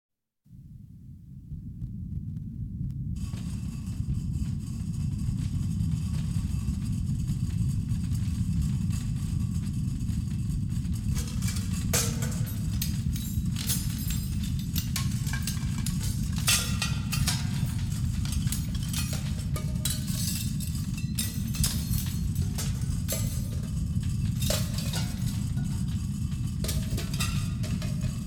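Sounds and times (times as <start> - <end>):
earthquake: 0.7 - 28.2.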